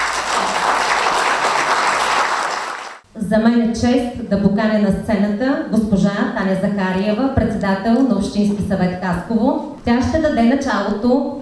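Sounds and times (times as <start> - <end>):
crowd clapping steadily: 0.0 - 3.0
speech: 3.3 - 11.3.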